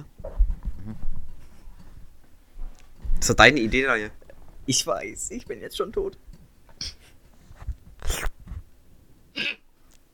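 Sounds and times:
speech: 3.2 - 6.2
person sneezing: 8.0 - 8.3.

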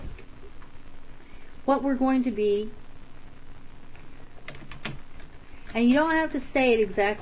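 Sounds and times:
speech: 1.7 - 2.8, 5.8 - 7.1
typing on a computer keyboard: 4.5 - 5.3.

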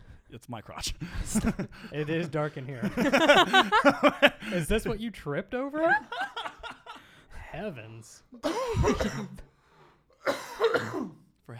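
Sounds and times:
speech: 0.3 - 6.4, 7.6 - 9.5
laughter: 1.0 - 5.0, 5.8 - 7.2
person coughing: 8.4 - 9.5, 10.2 - 11.3.

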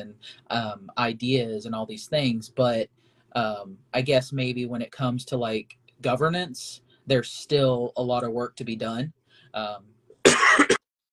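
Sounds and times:
speech: 0.0 - 10.8
harsh raspy coughs: 10.2 - 10.8.

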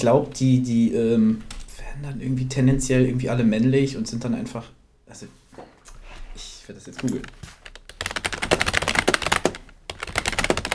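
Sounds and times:
speech: 0.0 - 5.7, 6.4 - 7.6
fast typing on a loud computer keyboard: 7.0 - 10.7.

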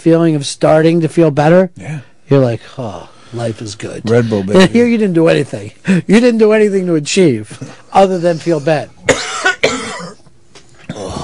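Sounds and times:
speech: 0.0 - 9.3
person coughing: 9.1 - 11.2.

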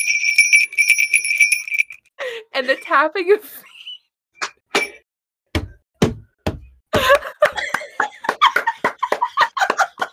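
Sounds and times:
small bells jingling: 0.0 - 2.1
speech: 2.6 - 3.7
laughter: 6.9 - 10.1.

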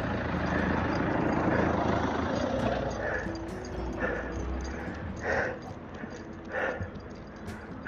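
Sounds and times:
car driving past on a mountain road: 0.0 - 6.3
faint outdoor noises: 0.0 - 7.8.

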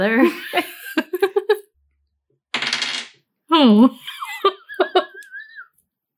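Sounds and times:
people giggling: 0.2 - 1.7, 4.0 - 5.7
dice tumbling across a table: 2.5 - 3.2.

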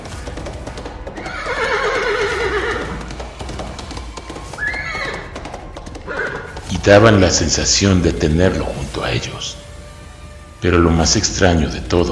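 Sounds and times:
horse hooves clip-clopping on cobblestone in a cemetery: 0.0 - 12.0
horse whinnying: 1.2 - 5.5, 6.1 - 6.7
speech: 6.8 - 9.6, 10.6 - 12.0.

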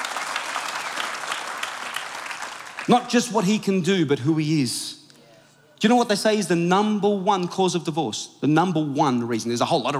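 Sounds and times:
worship congregation applauding in a church service: 0.0 - 3.2
speech: 2.9 - 4.9, 5.8 - 9.9.

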